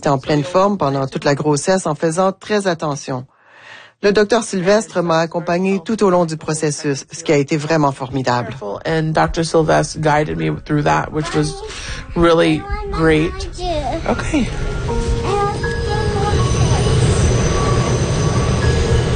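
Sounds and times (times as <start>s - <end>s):
speech: 0.0s - 3.3s, 4.0s - 14.7s
subway train riding from Brooklyn to Manhattan: 11.0s - 19.1s.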